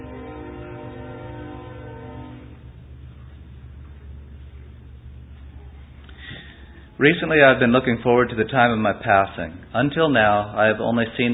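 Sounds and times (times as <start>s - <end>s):
train horn sounding a multi-tone chord: 0.0s - 2.7s
low rumble of rolling train wheels and cars: 0.0s - 11.3s
speech: 7.0s - 11.3s.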